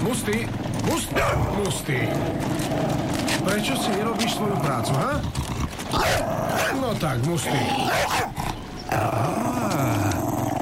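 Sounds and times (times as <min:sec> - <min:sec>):
dense loud noise: 0:00.0 - 0:10.5
speech: 0:00.1 - 0:10.0
dog growling: 0:00.7 - 0:10.5.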